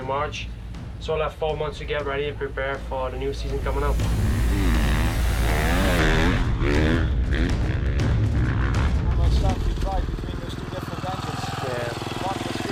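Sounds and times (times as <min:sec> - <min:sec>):
speech: 0:00.1 - 0:04.4
motorcycle engine revving in third gear during a training ride: 0:03.4 - 0:12.7.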